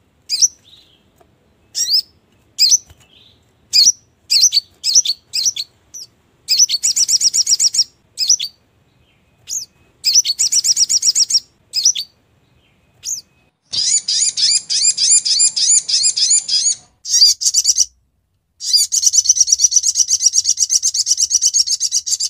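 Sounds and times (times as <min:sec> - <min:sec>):
brown-throated sunbird chirping and trilling, Labaik song variant: 0:00.3 - 0:18.0, 0:18.6 - 0:22.2.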